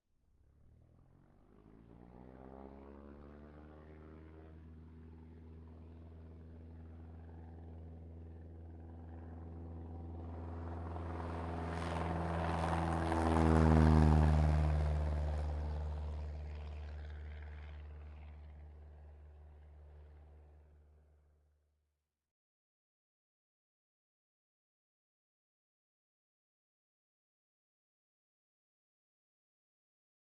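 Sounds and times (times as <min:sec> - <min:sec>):
Cessna 172 taking off: 0:00.4 - 0:21.3.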